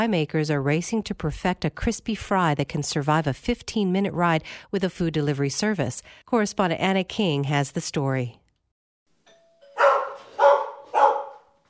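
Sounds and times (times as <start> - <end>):
speech: 0.0 - 8.4
dog barking at door: 9.8 - 11.6.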